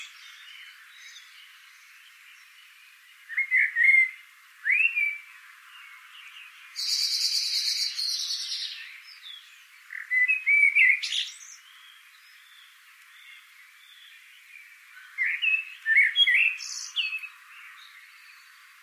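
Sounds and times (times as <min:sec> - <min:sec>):
Eurasian blackbird Turdus merula song with squeaky twitters: 0:00.0 - 0:18.8.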